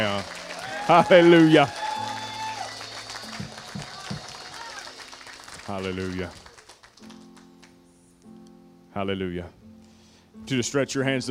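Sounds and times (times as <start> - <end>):
speech: 0.0 - 1.8, 5.7 - 6.4, 9.0 - 9.6, 10.5 - 11.2
audience clapping hands in praise: 0.0 - 7.8.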